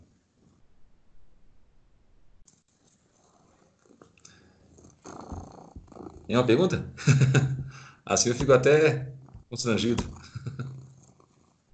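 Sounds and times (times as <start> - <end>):
cat purring: 2.7 - 11.7
speech: 6.3 - 10.4
laughter: 6.6 - 8.4, 9.9 - 10.7.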